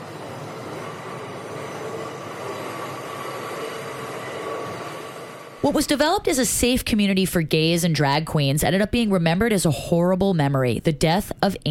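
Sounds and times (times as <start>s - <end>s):
faint high whine of a subway train: 0.0s - 6.6s
subway train rumbling along the rails: 0.0s - 6.8s
speech: 5.6s - 11.6s.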